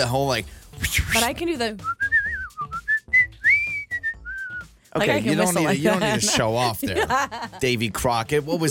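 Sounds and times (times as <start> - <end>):
speech: 0.0 - 1.9, 5.0 - 8.7
person whistling with lips: 0.8 - 4.9
laughter: 5.1 - 8.7.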